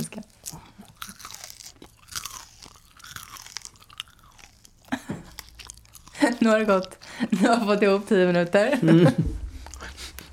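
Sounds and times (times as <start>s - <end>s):
crunching and chewing of a rice cake: 0.0s - 7.2s
speech: 6.2s - 9.3s.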